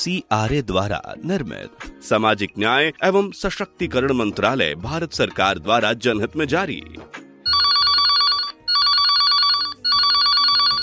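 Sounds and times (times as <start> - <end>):
speech: 0.0 - 7.3
telephone ringing in long trilling bursts: 7.5 - 10.8.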